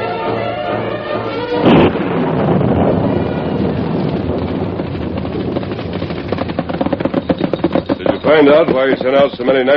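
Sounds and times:
loud windy roar of a storm: 0.1s - 8.7s
thunder crack and rumble of a storm at night: 1.5s - 7.6s
speech: 8.4s - 9.7s.

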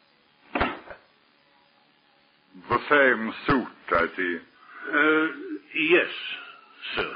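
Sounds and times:
door swinging shut with a solid thud: 0.5s - 1.0s
speech: 2.7s - 7.1s.

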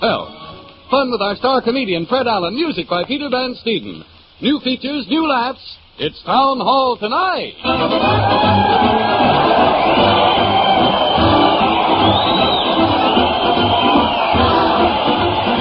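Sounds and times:
speech: 0.9s - 9.7s
large crowd cheering and shouting: 7.7s - 15.5s
high whoops from the crowd: 8.0s - 15.5s.

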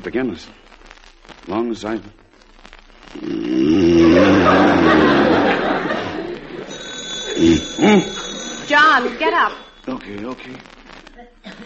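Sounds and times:
speech: 0.0s - 0.7s, 1.5s - 2.2s, 3.1s - 5.2s, 7.4s - 10.7s
person chuckling: 3.2s - 6.7s, 7.3s - 8.5s
thinner high tone: 3.8s - 10.1s
old-style telephone bell ringing with a harsh metallic clatter: 4.3s - 9.9s.

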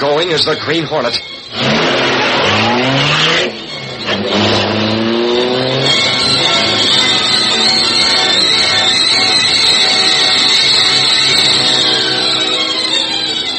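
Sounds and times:
speech: 0.0s - 1.9s
super-powered high-speed car engine accelerating hard: 0.0s - 13.5s.

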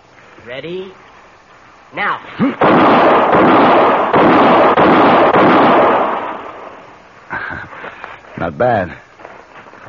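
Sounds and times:
speech: 0.4s - 1.1s, 1.9s - 4.6s, 8.4s - 9.0s
rapid handgun gunfire in a quick-draw shooting contest: 2.6s - 6.7s.

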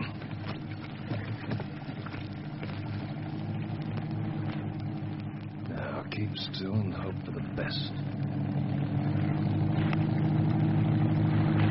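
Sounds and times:
patrol motorboat engine droning on the water: 0.0s - 11.6s
speech: 6.2s - 8.7s.

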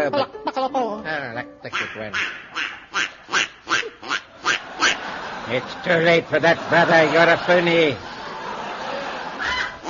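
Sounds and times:
speech: 0.1s - 0.8s, 2.0s - 2.3s, 5.5s - 8.1s
comic duck quacking: 1.7s - 5.2s, 9.4s - 9.8s
laughter: 3.8s - 9.8s.

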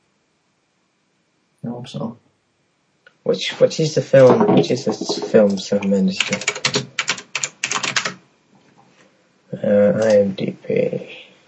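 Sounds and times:
speech: 1.6s - 2.2s, 3.2s - 6.9s, 9.7s - 11.2s
typing on a Mac Mini computer keyboard: 4.8s - 8.2s.

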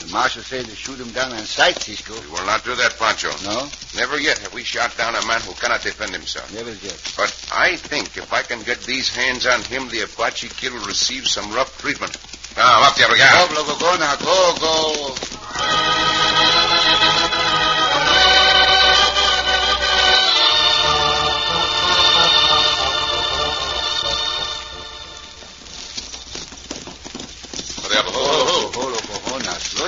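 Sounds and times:
horse hooves clopping: 0.0s - 29.8s
speech: 0.2s - 17.4s
horses whinnying: 12.6s - 29.8s.

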